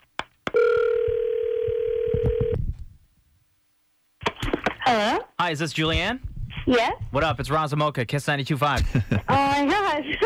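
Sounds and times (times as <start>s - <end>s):
telephone dial tone: 0.6s - 2.6s
speech: 5.0s - 10.2s
laughter: 8.8s - 10.2s.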